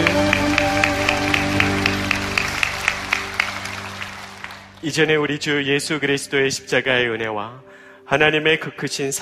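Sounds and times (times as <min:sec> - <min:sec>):
audience clapping in rhythm as applause of glory to God: 0:00.0 - 0:05.0
sustained organ-like chords: 0:00.0 - 0:08.1
speech: 0:04.8 - 0:09.1.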